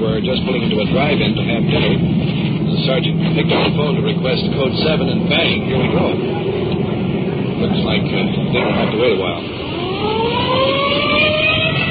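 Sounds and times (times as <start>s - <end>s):
speech: 0.0s - 6.8s, 7.6s - 11.2s
engine and road noise: 0.0s - 11.9s
police car siren wailing: 8.1s - 11.9s.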